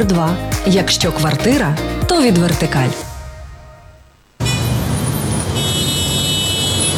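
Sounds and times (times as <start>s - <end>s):
speech: 0.0s - 3.1s
dense city traffic roar: 3.9s - 6.9s
car horns tooting: 4.4s - 6.9s.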